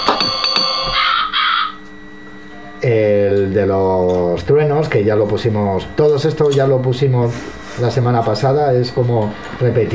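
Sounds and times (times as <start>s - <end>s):
crow-like cawing bird call played from a sound effects machine: 0.9s - 1.8s
speech: 2.8s - 9.9s.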